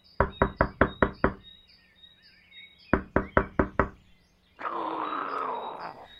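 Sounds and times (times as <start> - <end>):
birds chirping: 0.0 - 6.1
loud sharp knocks on the wall or door of a horse stable: 0.2 - 1.4, 3.0 - 4.0.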